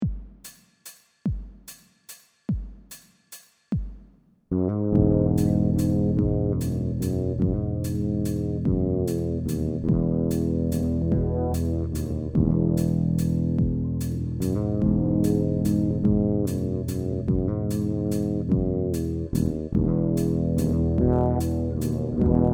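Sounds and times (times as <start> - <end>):
FL bass: 4.5 - 22.5.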